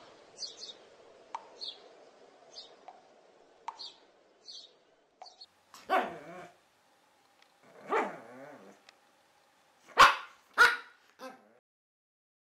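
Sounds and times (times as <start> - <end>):
dog barking: 5.8 - 6.5, 7.8 - 8.8, 9.9 - 11.6.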